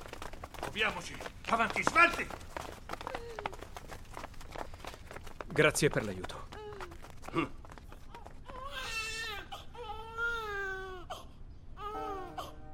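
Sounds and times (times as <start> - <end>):
speech: 0.7 - 2.5, 5.5 - 6.3, 7.3 - 7.6
infant crying in loud wailing bursts: 6.5 - 7.5, 8.1 - 12.6.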